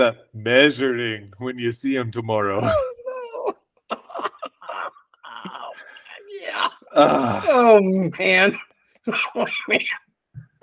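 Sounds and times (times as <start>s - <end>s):
speech: 0.0s - 3.0s, 7.0s - 10.0s
laughter: 2.6s - 5.8s
harsh coughs: 8.6s - 10.1s.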